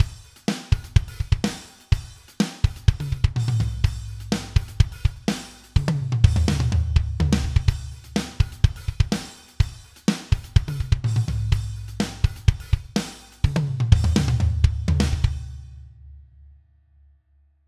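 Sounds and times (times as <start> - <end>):
rock drum kit: 0.0 - 15.8.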